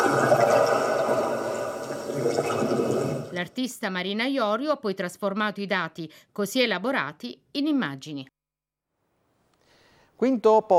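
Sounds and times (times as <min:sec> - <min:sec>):
deep sea sounds picked up by an acoustic echo sounder: 0:00.0 - 0:03.4
speech: 0:03.4 - 0:08.3, 0:10.2 - 0:10.7.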